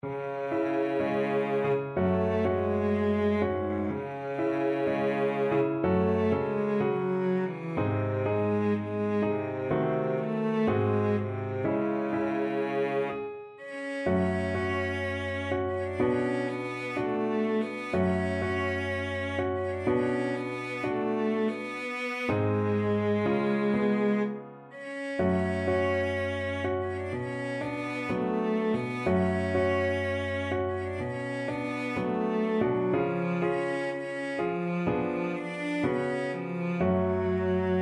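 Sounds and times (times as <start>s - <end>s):
despairing piano and cello sketch: 0.0s - 37.8s.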